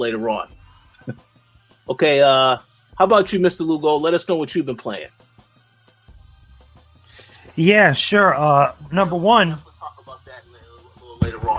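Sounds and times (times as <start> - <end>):
speech: 0.0 - 1.3, 1.9 - 5.2, 7.6 - 9.7
faint tinny voices of livestream audio playing through a speaker: 7.6 - 11.5.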